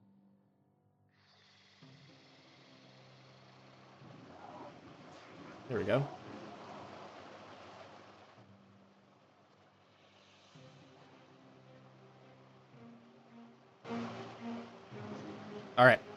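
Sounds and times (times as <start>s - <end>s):
heavy rain pounding in a dense hissing wash: 4.1s - 8.4s, 13.9s - 16.1s
speech: 5.7s - 6.2s, 15.8s - 16.1s.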